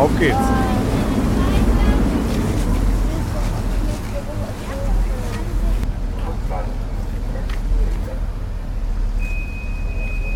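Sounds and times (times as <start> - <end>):
water rushing past a ferry on the Elbe river: 0.0 - 5.8
rushing wind on a ferry: 0.0 - 9.2
harbor ferry low rumble on the Elbe river: 0.0 - 10.3.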